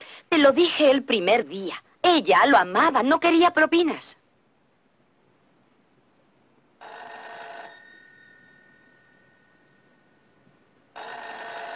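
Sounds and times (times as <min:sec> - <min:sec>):
speech: 0:00.3 - 0:04.2
old-style telephone bell ringing: 0:06.8 - 0:10.3, 0:10.9 - 0:11.7.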